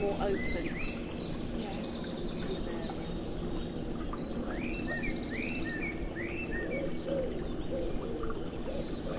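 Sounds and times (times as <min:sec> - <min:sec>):
speech: 0:00.0 - 0:01.2
warblers singing: 0:00.0 - 0:09.1
pigeon cooing in a woodland: 0:06.5 - 0:09.1.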